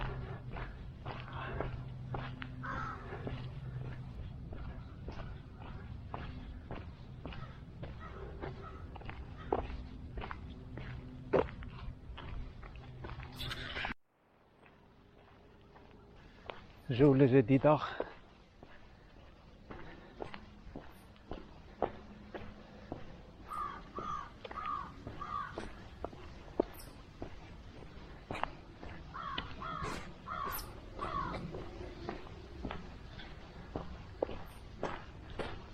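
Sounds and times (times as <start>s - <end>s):
crows cawing: 0.0s - 10.3s, 22.4s - 34.6s
crunching footsteps: 0.0s - 35.7s
light outdoor ambience: 0.0s - 35.7s
speech: 16.9s - 18.0s.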